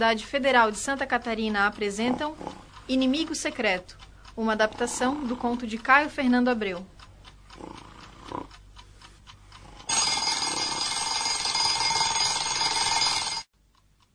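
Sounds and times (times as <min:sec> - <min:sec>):
speech: 0:00.0 - 0:07.0
clock ticking softly: 0:00.0 - 0:14.1
alarm clock metallic ringing: 0:09.9 - 0:13.5.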